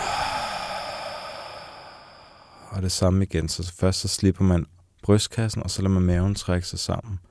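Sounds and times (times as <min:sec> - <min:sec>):
deep exhalation through the mouth: 0:00.0 - 0:02.8
speech: 0:02.7 - 0:07.2.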